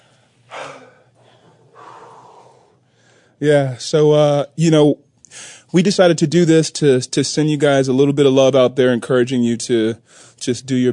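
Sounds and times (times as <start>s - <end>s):
person breathing heavily catching breath after exertion: 0.0s - 3.4s, 5.3s - 5.7s, 10.0s - 10.4s
speech: 3.4s - 10.9s.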